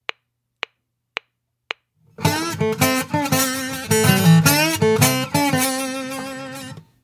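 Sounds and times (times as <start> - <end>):
slide guitar: 2.1 - 6.9.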